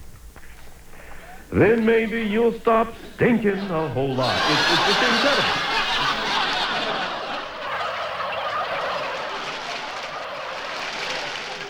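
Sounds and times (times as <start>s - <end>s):
big flock of turkeys gobbling: 0.3s - 11.6s
laughter: 1.2s - 11.6s
speech: 1.5s - 5.6s.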